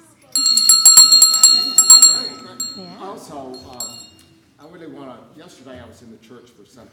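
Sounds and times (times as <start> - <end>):
handbell ringing: 0.0 - 2.9, 3.6 - 4.1
speech: 5.4 - 6.9.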